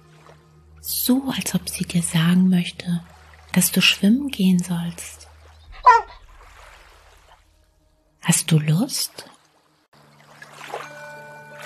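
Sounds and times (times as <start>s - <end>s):
speech: 0.8s - 5.3s, 8.5s - 9.4s
female dog short whiny bark: 5.8s - 6.2s.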